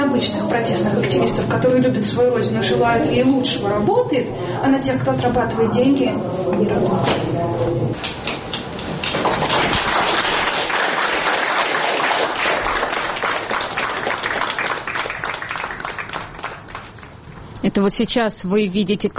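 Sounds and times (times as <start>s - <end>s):
speech: 0.2s - 8.3s, 17.6s - 19.1s
audience in Moscow applauding after a film screening: 8.8s - 17.4s.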